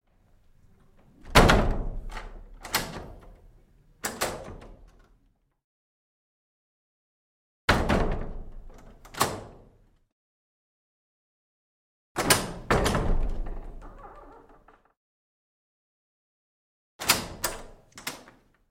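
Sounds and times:
wooden vestry door with latch: 0.8s - 5.5s, 7.7s - 10.1s, 12.2s - 15.0s, 17.0s - 18.6s.

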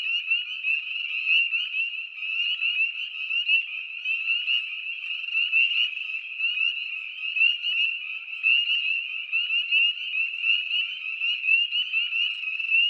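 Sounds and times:
spring peeper frog chorus peeping: 0.0s - 12.8s.

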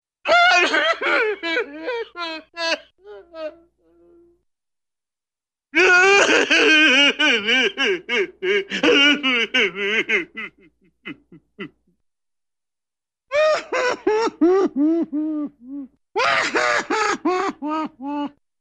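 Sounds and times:
man crying comically boo-hoo: 0.3s - 4.3s, 5.8s - 11.9s, 13.3s - 18.4s
laughter: 0.6s - 3.6s, 6.0s - 11.8s, 13.4s - 18.4s.

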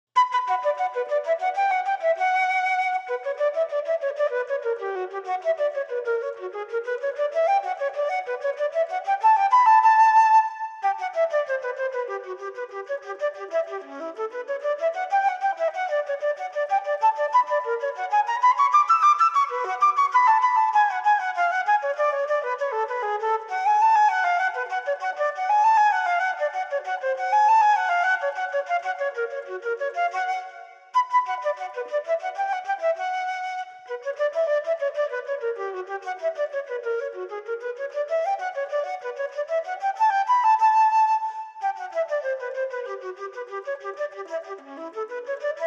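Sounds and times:
unaccompanied flute playing a courante: 0.2s - 45.6s.

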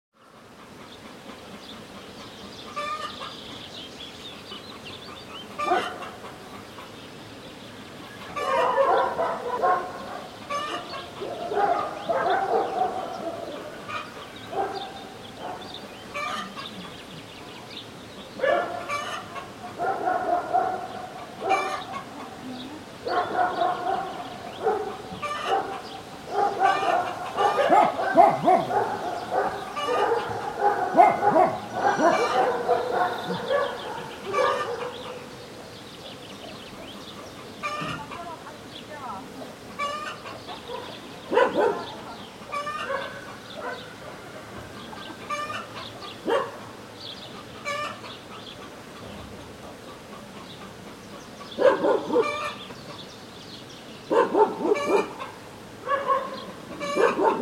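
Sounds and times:
many dogs barking on a village morning: 5.5s - 7.0s, 8.3s - 16.9s, 18.3s - 22.4s, 23.0s - 35.4s, 39.8s - 46.8s, 51.4s - 52.7s, 54.1s - 57.3s.

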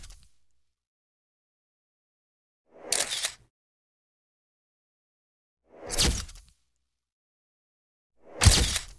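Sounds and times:
camera picture shot: 2.8s - 3.5s, 8.4s - 8.9s.

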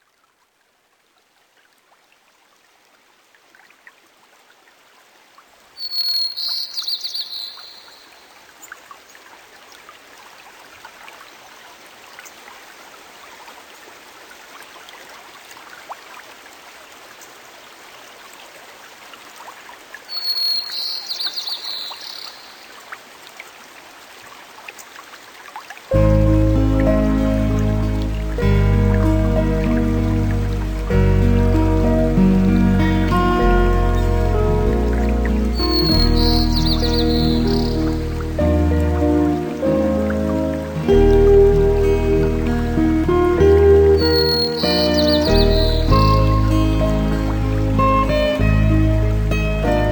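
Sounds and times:
clean and clear guitar: 26.0s - 49.9s.

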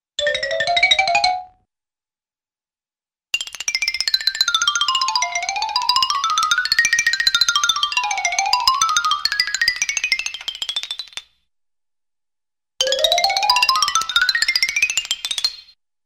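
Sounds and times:
xylophone: 0.2s - 1.6s, 3.4s - 10.9s, 12.8s - 15.2s.

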